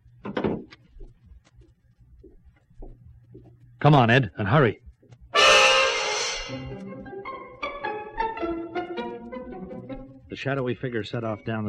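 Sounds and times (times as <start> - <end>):
speech: 3.8 - 4.8, 10.4 - 11.6
door creaking open: 5.4 - 6.6.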